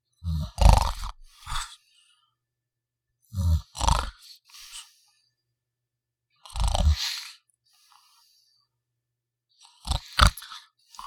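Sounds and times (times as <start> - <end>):
man snoring with short inhales and grunts: 0.2 - 1.7, 3.4 - 4.2, 6.4 - 7.3, 9.8 - 10.4.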